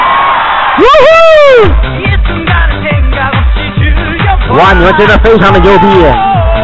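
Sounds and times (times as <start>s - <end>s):
noisy audience screaming on request: 0.0s - 1.8s
loud drawn-out scream: 0.8s - 1.8s
speech: 0.8s - 1.9s, 4.5s - 6.3s
steady thumping beats: 1.6s - 6.6s.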